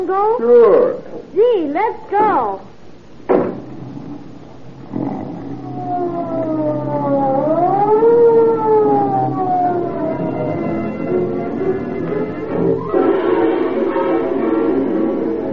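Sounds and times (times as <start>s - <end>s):
speech: 0.0s - 2.7s
sharp knock: 3.3s - 3.8s
thump: 3.3s - 3.9s
police siren wailing: 4.8s - 15.5s.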